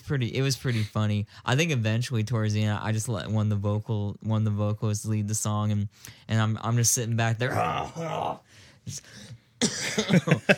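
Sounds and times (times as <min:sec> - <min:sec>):
speech: 0:00.1 - 0:10.5
throat clearing: 0:09.6 - 0:10.4
person coughing: 0:09.6 - 0:10.5.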